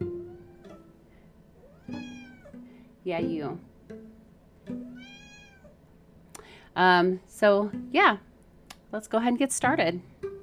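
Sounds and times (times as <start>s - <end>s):
cat on a desk meowing: 0.2s - 0.9s, 1.6s - 2.6s, 4.9s - 5.8s
speech: 3.1s - 3.7s, 6.8s - 8.3s, 8.9s - 10.1s.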